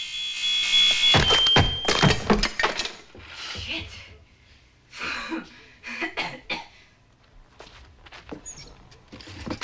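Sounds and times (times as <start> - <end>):
shrill smoke alarm tone on a hall ceiling: 0.0 - 2.0
broom handle bashing a smoke alarm on a hall ceiling: 1.1 - 2.4.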